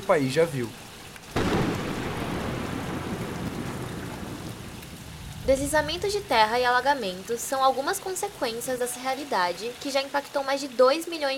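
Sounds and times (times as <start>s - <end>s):
heavy extreme rain pouring down in Rio Grande do Sul: 0.0s - 11.3s
speech: 0.1s - 0.8s, 5.5s - 11.3s
thunder crack rolling into rumble: 1.4s - 6.9s.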